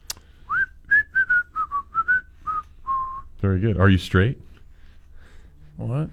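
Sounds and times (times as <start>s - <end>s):
person whistling a short clear melody: 0.5s - 3.3s
speech: 3.4s - 4.5s, 5.8s - 6.1s.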